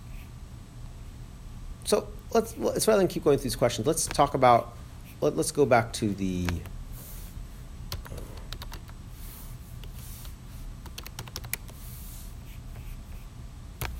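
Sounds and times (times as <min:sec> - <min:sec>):
speech: 0:01.9 - 0:06.7
typing on a Microsoft computer keyboard: 0:07.9 - 0:09.0, 0:10.8 - 0:11.8.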